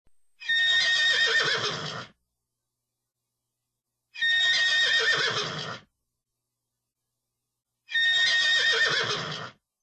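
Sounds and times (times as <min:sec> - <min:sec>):
horse neighing with loud broad whinnies: 0:00.4 - 0:02.2, 0:04.2 - 0:05.9, 0:07.9 - 0:09.6.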